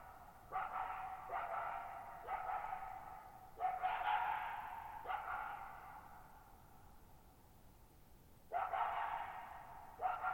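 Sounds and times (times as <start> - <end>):
lone coyote barking at night in a high dry plateau meadow: 0.1 - 6.1, 8.5 - 10.3.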